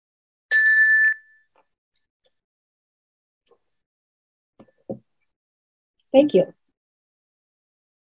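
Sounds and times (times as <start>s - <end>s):
small chime ringing: 0.5s - 1.4s
speech: 6.1s - 6.6s.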